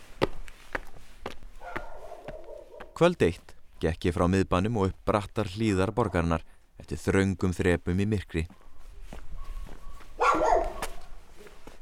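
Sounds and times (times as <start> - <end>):
dog barking at night on steep narrow city steps: 1.6 - 3.0, 10.1 - 11.2
speech: 3.0 - 8.6.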